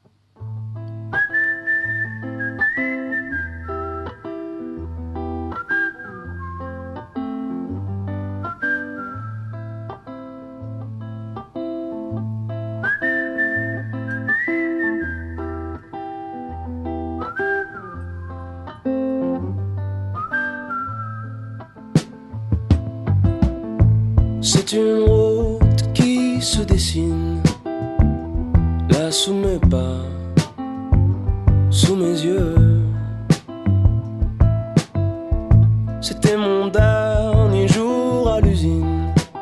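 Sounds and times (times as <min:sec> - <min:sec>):
whistled melody in a song intro: 0:01.1 - 0:04.7, 0:05.5 - 0:07.6, 0:08.4 - 0:09.9, 0:12.8 - 0:16.5, 0:17.2 - 0:19.4, 0:20.1 - 0:22.2
steady rhythmic bass and accompaniment: 0:22.0 - 0:39.3
speech: 0:24.7 - 0:25.0, 0:26.4 - 0:27.4.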